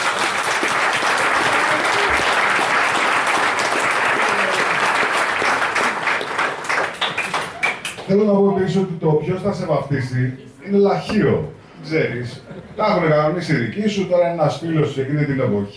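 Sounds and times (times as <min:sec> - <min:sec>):
large audience applauding: 0:00.0 - 0:08.1
speech: 0:08.1 - 0:15.7.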